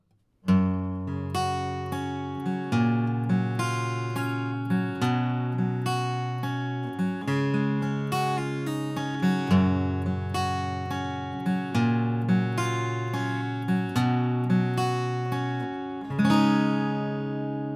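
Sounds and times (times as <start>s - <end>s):
guitar pick: 0.5s - 17.7s.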